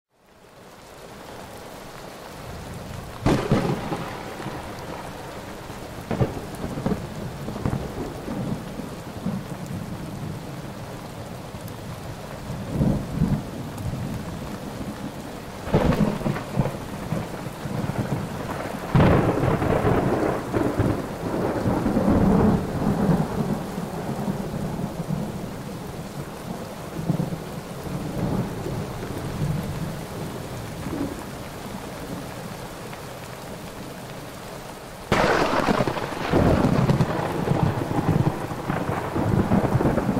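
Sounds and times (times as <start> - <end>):
rain: 0.1 - 40.1
thunder: 3.2 - 9.8, 15.6 - 25.3, 35.1 - 40.1.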